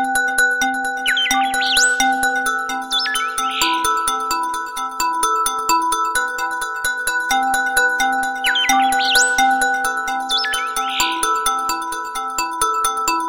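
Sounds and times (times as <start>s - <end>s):
sweet alarm bells ringing: 0.2s - 13.2s.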